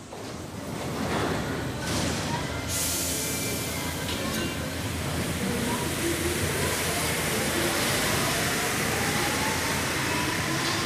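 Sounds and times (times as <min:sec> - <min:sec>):
moving metro train rumble of wheels and motor in Paris: 0:00.0 - 0:10.8.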